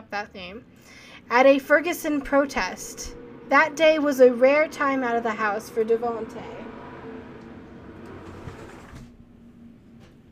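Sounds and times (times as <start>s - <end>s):
speech: 0.1s - 6.6s
large trucks driving by outside: 0.6s - 10.2s.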